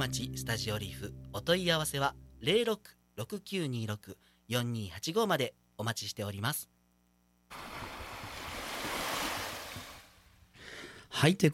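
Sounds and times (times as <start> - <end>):
speech: 0.0 - 6.7, 7.5 - 7.8, 11.1 - 11.5
ocean waves at the sea in Okinawa Japan: 7.5 - 10.2.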